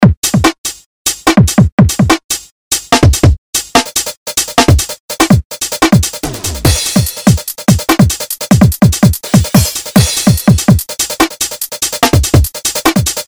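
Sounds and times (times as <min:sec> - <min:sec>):
drum and bass music: 0:00.0 - 0:13.2.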